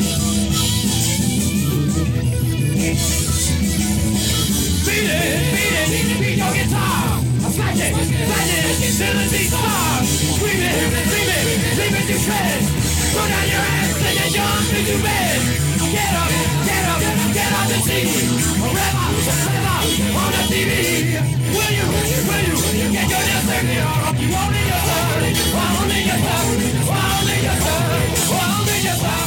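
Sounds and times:
loud dense rock song with harsh screamed vocals: 0.0s - 29.2s
thick wall of distorted guitars: 0.0s - 29.2s.

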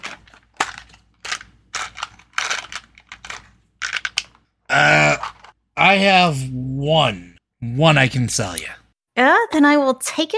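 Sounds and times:
physical dice rattling across a hard surface: 0.0s - 4.3s
speech: 5.9s - 10.3s.

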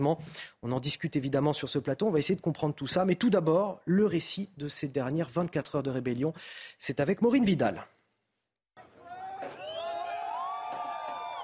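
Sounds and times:
speech: 0.0s - 8.0s
crowd of residents of Rostov Russia cheering and shouting: 8.8s - 11.4s
high whoops: 9.0s - 11.4s.

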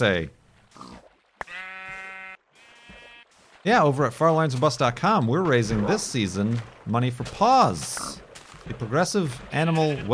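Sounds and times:
speech: 0.0s - 0.9s, 3.6s - 10.1s
pig grunting: 0.7s - 1.0s
sheep bleating: 1.4s - 3.3s, 9.5s - 10.1s.

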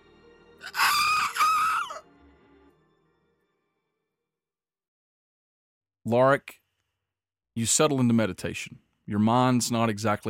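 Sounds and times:
person screaming: 0.6s - 2.0s
speech: 6.1s - 6.6s, 7.6s - 10.2s.

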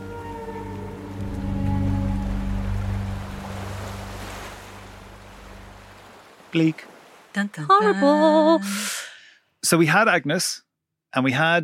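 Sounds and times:
ocean wave surging in and draining back out: 0.0s - 8.9s
steady low rumble: 0.7s - 6.0s
speech: 6.5s - 9.0s, 9.6s - 11.6s.

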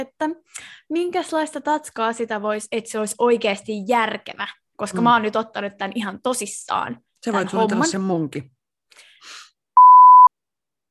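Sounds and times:
speech: 0.0s - 8.6s, 9.2s - 9.4s
steady electronic censor bleep tone: 9.8s - 10.3s.

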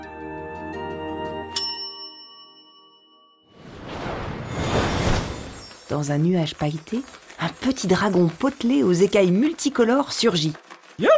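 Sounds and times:
counter service bell ding in a shop entrance hall: 1.6s - 3.5s
loud rushing swoosh: 3.6s - 5.5s
speech: 5.9s - 11.1s.

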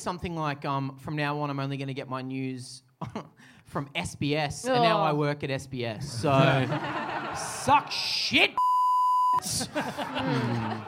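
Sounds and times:
speech: 0.0s - 8.6s, 9.4s - 10.8s
laughter: 6.3s - 8.3s, 9.4s - 10.8s
censor bleep: 8.6s - 9.4s.

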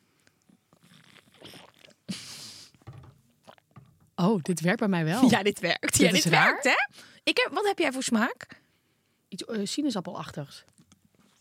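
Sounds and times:
two people sipping from drinking bottles: 0.2s - 2.8s, 3.4s - 3.8s
swallowing noises: 0.4s - 2.1s, 3.4s - 3.8s
airy slurp: 0.8s - 2.1s
speech: 4.2s - 8.5s, 9.4s - 10.7s.

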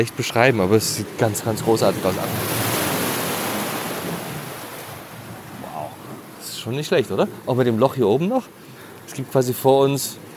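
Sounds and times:
speech: 0.0s - 2.7s, 6.6s - 10.3s
ocean waves crashing through lava rock tunnel: 0.0s - 10.3s.

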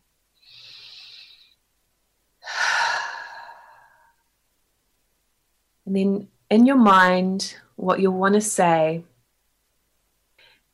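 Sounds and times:
slow deep breaths: 0.4s - 1.7s, 2.4s - 4.2s
speech: 5.9s - 9.1s.

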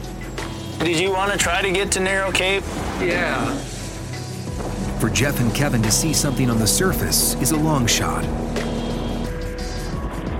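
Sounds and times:
motorboat engine running on the water: 0.0s - 9.7s
speech: 0.8s - 3.7s, 5.0s - 8.4s.

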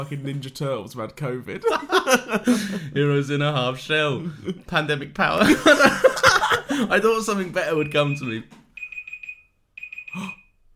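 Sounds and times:
speech: 0.0s - 8.6s
laughter: 1.6s - 2.9s, 5.4s - 7.0s
electronic alarm beeping in high-pitched pulses: 7.7s - 10.6s.

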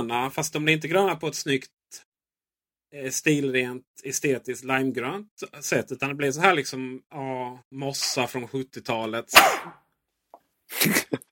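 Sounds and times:
speech: 0.0s - 2.1s, 2.9s - 9.8s, 10.7s - 11.3s
person sneezing: 9.3s - 9.8s
laughter: 10.8s - 11.3s.

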